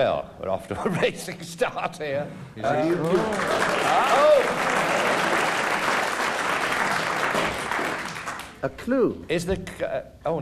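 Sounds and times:
speech: 0.0s - 5.0s, 8.6s - 10.3s
studio audience applause: 2.8s - 8.6s.

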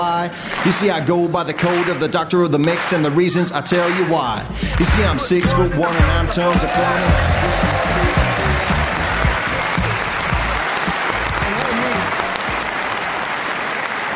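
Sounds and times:
speech: 0.0s - 7.8s
large Geordie audience clapping: 0.0s - 14.1s
murmur of crowd voices: 4.4s - 14.1s.

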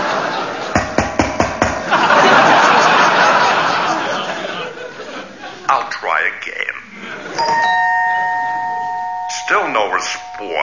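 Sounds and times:
laughter: 0.0s - 0.8s, 1.8s - 5.9s, 6.9s - 7.6s
doorbell chime: 7.4s - 10.6s.

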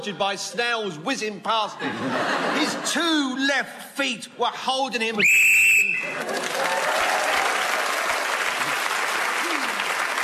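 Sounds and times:
speech: 0.0s - 5.5s
laughter: 1.7s - 3.4s
short shrill whistle blast to end a player's turn: 5.2s - 6.2s
large audience loud sustained applause: 5.9s - 10.2s.

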